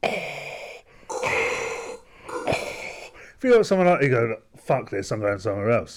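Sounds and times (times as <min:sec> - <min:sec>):
voice imitating heavy rasping respirator-mask breathing: 0:00.0 - 0:03.4
speech: 0:03.4 - 0:05.9.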